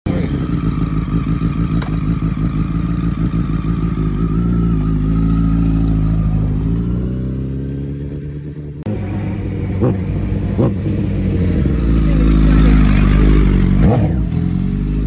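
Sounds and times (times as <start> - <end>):
CBR 100 motorcycle engine: 0.1 - 15.0.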